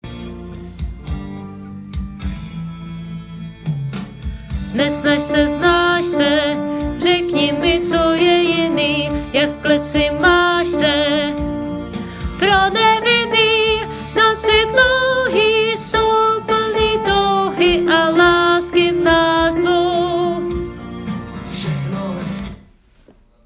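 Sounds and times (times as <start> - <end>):
piano: 0.0 - 22.6
person singing: 4.7 - 20.8.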